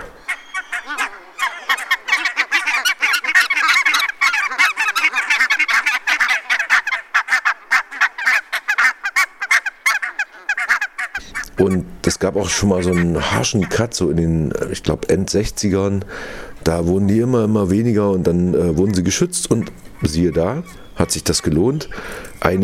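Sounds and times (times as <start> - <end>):
large flock of barnacle geese honking: 0.0 - 14.0, 18.6 - 22.6
speech: 11.6 - 22.6.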